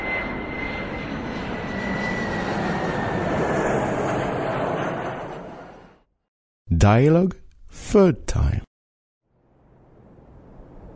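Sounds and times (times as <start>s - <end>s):
airplane flying overhead with engine drone: 0.0s - 6.0s, 9.4s - 10.9s
speech: 6.8s - 8.7s.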